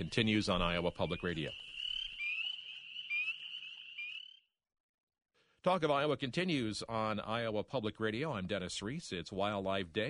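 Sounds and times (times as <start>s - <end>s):
speech: 0.0s - 1.7s, 5.6s - 10.0s
Spring Peeper chorus: 0.0s - 4.5s.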